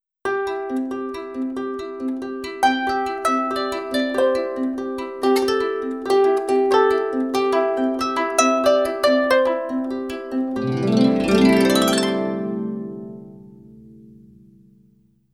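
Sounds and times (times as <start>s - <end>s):
harp: 0.3s - 14.8s.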